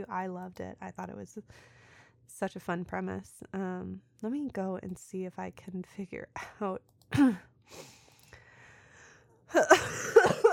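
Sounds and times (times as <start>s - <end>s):
speech: 0.0s - 8.0s, 9.5s - 10.3s
loud harsh coughing: 9.6s - 10.5s.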